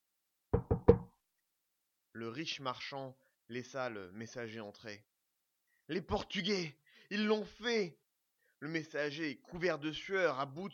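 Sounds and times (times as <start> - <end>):
firm knocking on a door: 0.5 - 1.2
speech: 2.2 - 5.1, 5.9 - 8.0, 8.6 - 10.7.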